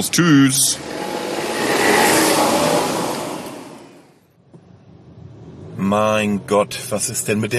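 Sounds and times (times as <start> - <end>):
speech: 0.0 - 1.1, 5.9 - 7.5
car engine revving up and pulling away: 0.0 - 4.2.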